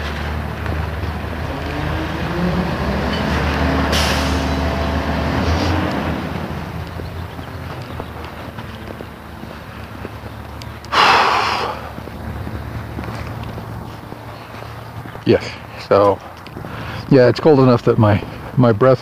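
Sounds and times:
light wind noise in cold weather: 0.0s - 18.9s
school bus idling with low steady engine rumble in cold weather: 0.0s - 18.9s
school bus air-brake hisses in cold weather: 3.9s - 4.5s
speech: 15.3s - 16.3s, 17.1s - 18.9s.

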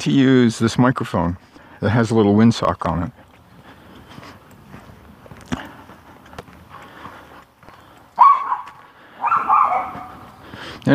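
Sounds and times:
speech: 0.0s - 3.2s
dog barking: 8.2s - 10.3s.

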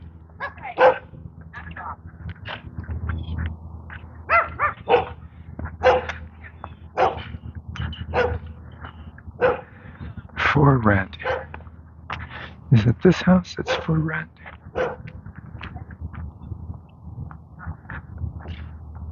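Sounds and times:
steady low rumble of outdoor noise: 0.0s - 19.1s
dog barking: 0.4s - 1.1s, 4.3s - 5.2s, 5.8s - 6.2s, 7.0s - 7.3s, 8.1s - 8.5s, 9.4s - 9.7s, 11.2s - 11.6s, 13.6s - 13.9s, 14.7s - 15.1s
speech: 10.6s - 11.2s, 12.7s - 14.4s.

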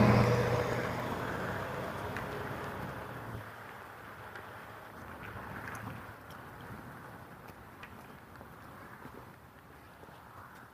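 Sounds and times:
car engine hum: 0.0s - 3.4s
road and wind noise of a car turning at an intersection: 0.0s - 10.7s.

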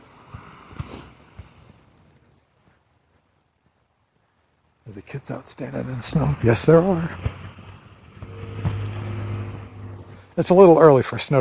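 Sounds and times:
speech: 4.9s - 7.4s, 10.4s - 11.3s
bus engine and road roar passing by: 6.0s - 10.5s.

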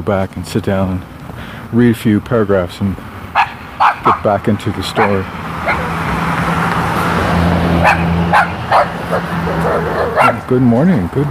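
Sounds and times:
speech: 0.0s - 3.1s, 4.0s - 5.4s, 7.9s - 11.3s
low rumble of traffic or an engine: 0.0s - 11.3s
small terrier yapping: 3.4s - 4.3s, 5.0s - 6.1s, 7.8s - 10.4s.

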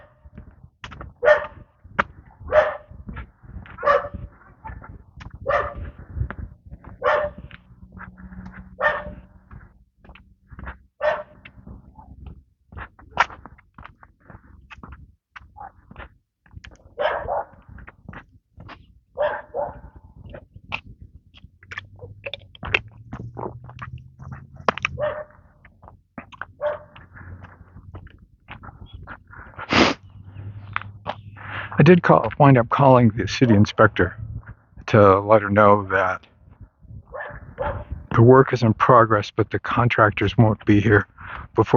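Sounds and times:
dog behind a fence barking at a leashed husky: 1.2s - 1.7s, 2.4s - 6.0s, 6.8s - 7.6s, 8.5s - 9.4s, 11.0s - 11.4s, 15.6s - 15.8s, 17.0s - 17.8s, 19.1s - 20.0s, 24.9s - 25.5s, 26.6s - 27.0s, 37.1s - 38.0s
speech: 31.9s - 34.2s, 34.9s - 36.3s, 38.2s - 41.7s.

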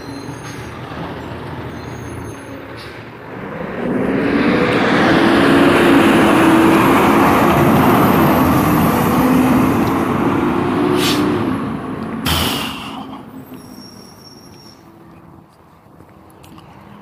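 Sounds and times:
garbage truck passing outside with heavy engine rumble and whine: 0.0s - 14.3s
sharp clank: 12.2s - 13.0s.

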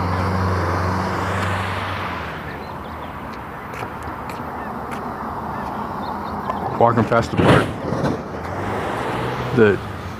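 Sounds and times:
steady roadway rumble from a passing vehicle: 0.0s - 10.1s
truck with loaded bed jolting over a speed bump: 6.3s - 8.6s
speech: 6.8s - 7.8s, 9.6s - 9.9s.

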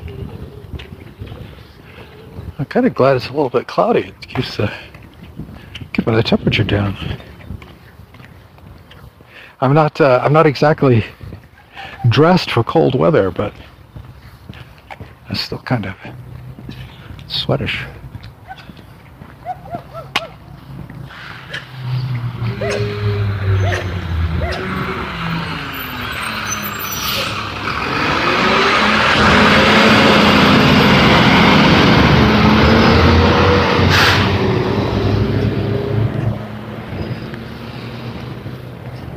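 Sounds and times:
speech: 2.6s - 4.9s, 6.1s - 7.3s, 9.6s - 11.2s, 11.8s - 13.7s, 15.3s - 16.3s, 17.3s - 18.0s
garbage truck brakes hissing: 20.7s - 30.4s
heavy garbage truck engine rumbling by outdoors: 21.1s - 37.0s.

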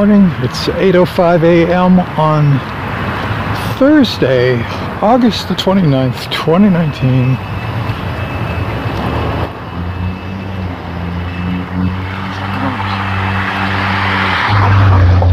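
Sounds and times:
speech: 0.0s - 2.9s, 3.8s - 7.5s
road noise: 0.0s - 15.3s
car passing by: 7.8s - 15.3s.

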